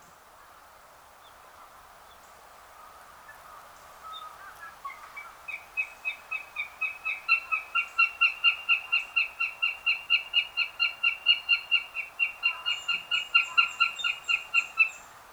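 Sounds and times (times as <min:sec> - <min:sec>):
northern goshawk harsh cackling calls: 0:06.3 - 0:15.0.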